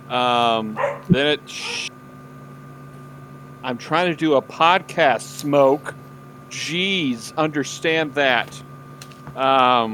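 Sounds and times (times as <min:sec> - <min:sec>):
speech: 0:00.1 - 0:01.9, 0:03.6 - 0:08.7, 0:09.3 - 0:09.9
dogs barking: 0:00.7 - 0:01.9.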